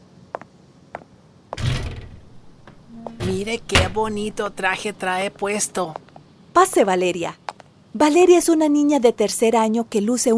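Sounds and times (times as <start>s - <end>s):
sharp knocks or latch clicks: 1.6s - 4.6s
door swinging open: 1.6s - 4.9s
speech: 3.4s - 6.0s, 6.6s - 10.3s.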